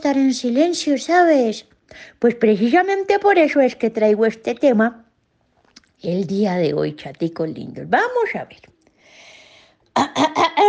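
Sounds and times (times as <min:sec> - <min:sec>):
speech: 0:00.0 - 0:05.0, 0:06.0 - 0:08.8, 0:10.0 - 0:10.6
person clearing throat: 0:10.0 - 0:10.6
person coughing: 0:10.0 - 0:10.6.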